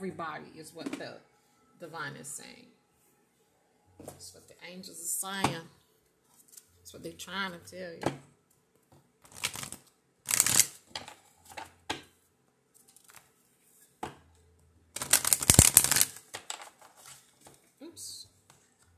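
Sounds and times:
speech: 0.0s - 2.8s, 4.0s - 5.8s, 6.9s - 8.3s
oracle cards shuffled by hand: 9.2s - 11.7s, 12.8s - 13.3s, 15.0s - 17.6s
oracle card popping out of the deck: 9.3s - 10.8s, 15.0s - 16.7s.

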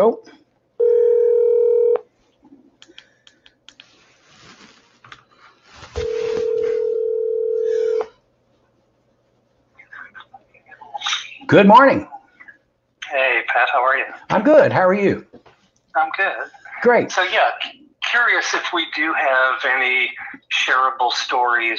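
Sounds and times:
speech: 0.0s - 0.4s, 11.5s - 12.1s, 13.1s - 15.3s, 16.0s - 21.7s
electronic telephone dialing tones: 0.8s - 2.0s, 6.0s - 8.1s
shuffling: 3.8s - 8.8s.

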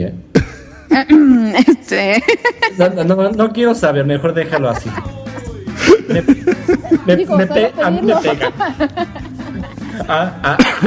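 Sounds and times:
speech: 0.0s - 0.3s, 1.0s - 5.2s, 5.8s - 9.2s, 10.0s - 10.8s
person coughing roughly: 0.3s - 0.9s, 10.5s - 10.8s
laughter: 1.6s - 3.0s, 4.3s - 10.8s
throaty voiced sounds from a person: 4.6s - 7.5s.

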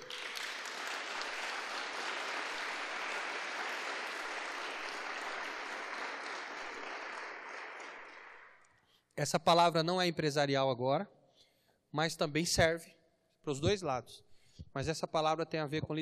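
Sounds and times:
large crowd applauding: 0.0s - 8.7s
speech: 9.2s - 11.2s, 11.9s - 16.0s.

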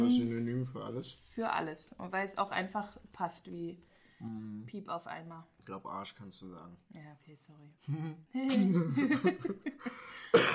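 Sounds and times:
speech: 0.0s - 10.5s
person chuckling: 7.9s - 10.5s
harsh cough: 10.3s - 10.5s.

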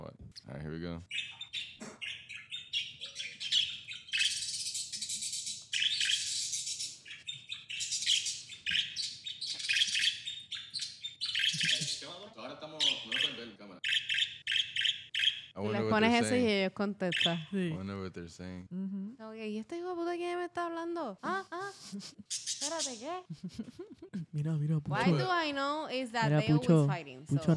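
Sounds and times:
birds chirping and twittering: 0.4s - 17.8s, 22.2s - 23.6s
speech: 0.5s - 1.4s, 15.6s - 27.5s
warbling whistly bird song: 1.1s - 15.6s, 17.0s - 17.6s, 22.3s - 23.2s.

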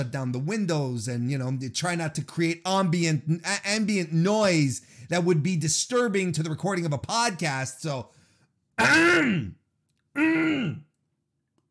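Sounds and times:
speech: 0.0s - 8.2s, 8.8s - 9.6s, 10.2s - 10.8s
person clearing throat: 8.8s - 9.6s, 10.2s - 10.9s.

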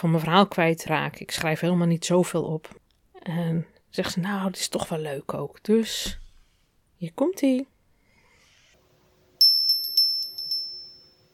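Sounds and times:
speech: 0.0s - 6.2s, 7.0s - 7.7s
small metal bell ringing: 9.4s - 11.3s.

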